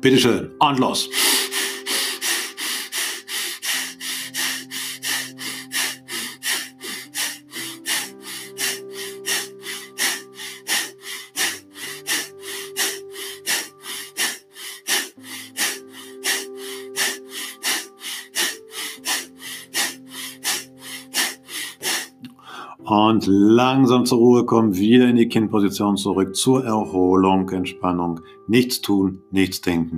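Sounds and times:
speech: 0.0 - 1.3, 23.1 - 29.9
soft sustained music: 0.0 - 29.9
rapid forceful bhastrika bellows breathing: 1.0 - 22.8.

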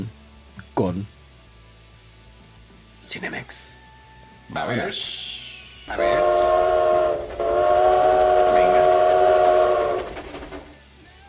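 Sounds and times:
speech: 0.8 - 1.2, 3.1 - 3.8, 4.5 - 6.7
rumbling rail noise: 4.8 - 10.8
train horn blast: 5.9 - 10.7.

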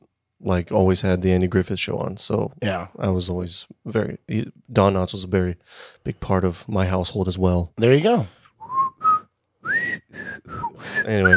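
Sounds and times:
speech: 0.4 - 8.4, 11.1 - 11.3
person whistling a short tune: 8.6 - 11.3.

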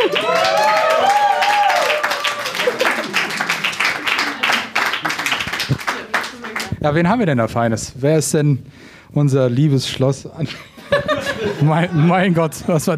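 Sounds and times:
laughter: 0.0 - 0.6, 2.4 - 6.6, 10.4 - 12.9
whoops and cheering voices: 0.0 - 3.2
enthusiastic audience applause: 0.0 - 6.8
speech: 6.8 - 10.7, 11.4 - 12.9.

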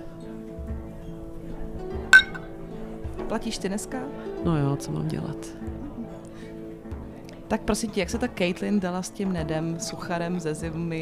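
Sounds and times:
two glasses clinking in a toast: 2.1 - 2.7
speech: 3.3 - 5.8, 7.5 - 10.9.

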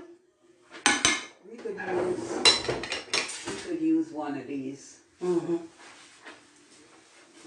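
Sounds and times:
metal cooking utensils clattering while rummaging for a big cooking spoon: 0.9 - 3.5
speech: 4.2 - 5.9.

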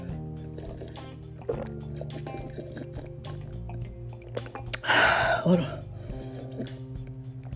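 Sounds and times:
person sipping tea: 0.0 - 7.5
tea pouring: 0.5 - 6.8
speech: 1.5 - 2.7, 4.9 - 5.8.

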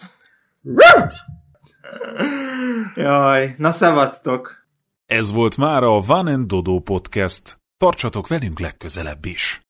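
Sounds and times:
speech: 0.6 - 1.3, 2.1 - 9.6
person imitating a dog bark: 0.7 - 2.2.

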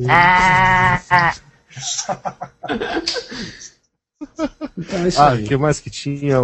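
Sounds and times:
sheep bleating: 0.0 - 1.4
speech: 0.0 - 3.7, 4.3 - 6.4
people chuckling: 0.0 - 5.4.

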